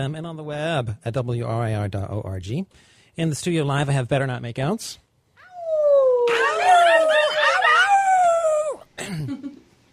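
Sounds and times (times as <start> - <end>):
speech: 0.0 - 5.0, 9.1 - 9.6
several people howling and yipping in a radio studio: 5.4 - 8.8.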